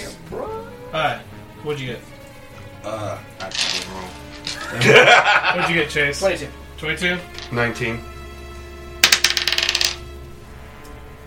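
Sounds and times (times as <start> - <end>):
speech: 0.3 - 2.1, 2.8 - 8.1
twelve-sided die rolled in a tabletop game: 3.4 - 4.7, 7.3 - 7.6, 9.0 - 10.1
laughter: 4.4 - 6.1.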